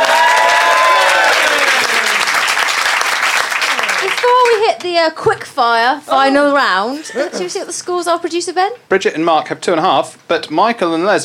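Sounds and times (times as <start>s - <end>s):
studio audience applause: 0.0s - 4.9s
speech: 4.9s - 11.2s.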